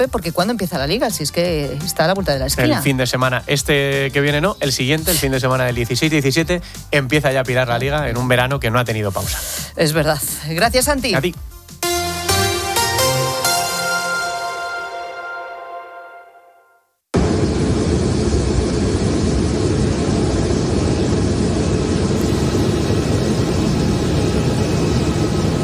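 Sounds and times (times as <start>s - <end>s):
speech: 0.0s - 11.5s
music: 0.0s - 17.0s
airplane engine roar while taxiing on an airport runway: 17.2s - 25.6s.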